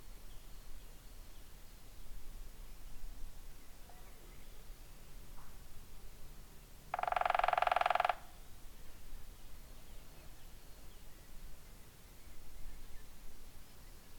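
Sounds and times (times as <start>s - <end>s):
quiet outdoor background: 0.0s - 14.1s
woodpecker drumming: 6.9s - 8.4s.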